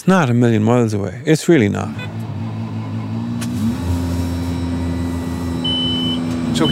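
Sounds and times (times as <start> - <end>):
speech: 0.0 - 2.1
modern tractor engine humming inside cab: 1.8 - 6.6.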